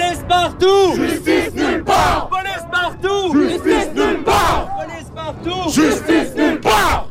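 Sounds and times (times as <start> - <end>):
protest crowd shouting in the street outside a police station in Montreal: 0.1 - 7.0.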